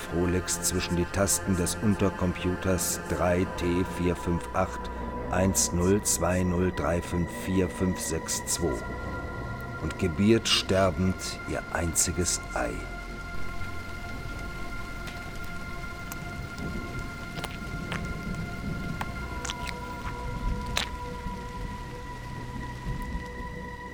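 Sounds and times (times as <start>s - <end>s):
speech: 0.1s - 9.2s, 9.8s - 12.9s
artificial rain pouring: 13.1s - 23.8s.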